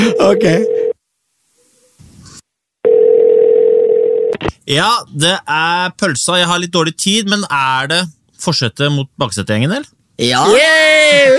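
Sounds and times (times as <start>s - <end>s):
speech: 0.1s - 0.8s, 4.7s - 11.3s
telephone ringback tone while a call goes through: 2.8s - 4.3s.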